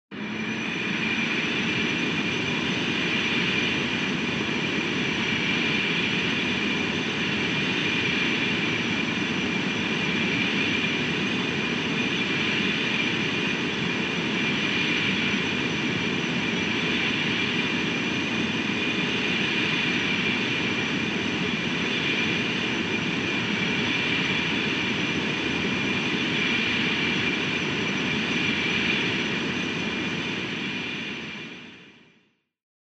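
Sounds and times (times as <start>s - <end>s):
retro anime jet close: 0.1s - 32.3s.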